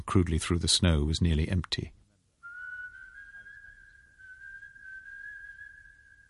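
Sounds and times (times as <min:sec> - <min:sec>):
speech: 0:00.1 - 0:02.0
person whistling a long steady note: 0:02.4 - 0:06.2.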